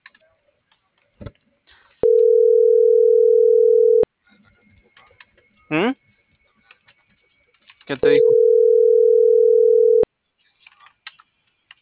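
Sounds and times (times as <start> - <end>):
telephone dial tone: 2.0 - 4.1, 8.2 - 10.1
speech: 7.9 - 8.4.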